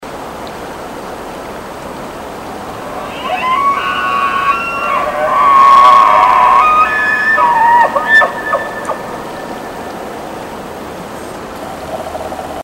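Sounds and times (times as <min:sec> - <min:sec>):
herd bull elk bugling: 0:02.4 - 0:10.9.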